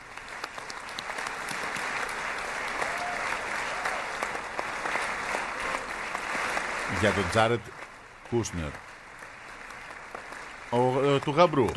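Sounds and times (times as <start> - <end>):
large parliament audience applauding in the Knesset: 0.0 - 11.7
speech: 7.0 - 8.9, 10.7 - 11.7.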